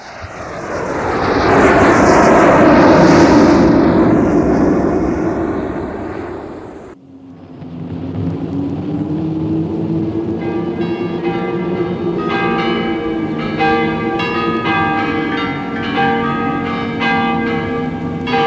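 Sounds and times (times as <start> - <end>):
private airplane engine hum: 0.0 - 14.0
private airplane engine drone in flight: 0.0 - 18.4.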